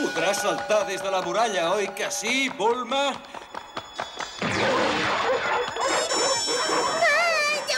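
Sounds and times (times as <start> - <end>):
speech: 0.2 - 3.3
five dogs barking and snarling: 4.6 - 7.7.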